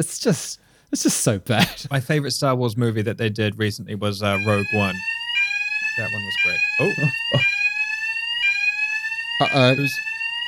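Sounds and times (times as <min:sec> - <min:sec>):
speech: 0:00.0 - 0:05.2, 0:06.0 - 0:07.5, 0:09.4 - 0:10.1
fire alarm blaring high-pitched tone: 0:04.4 - 0:10.4.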